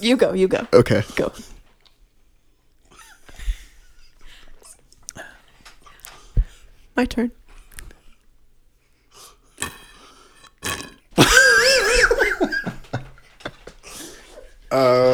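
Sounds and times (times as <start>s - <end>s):
speech: 0.0s - 1.6s, 7.0s - 7.4s, 14.7s - 15.1s
soft breaths: 1.0s - 11.0s, 13.2s - 14.7s
loud gurgling swallows of water deep in the throat: 9.6s - 11.9s
small mouth clicks: 9.6s - 11.9s
gulping sips of water: 9.6s - 12.0s
laughter: 11.2s - 14.0s.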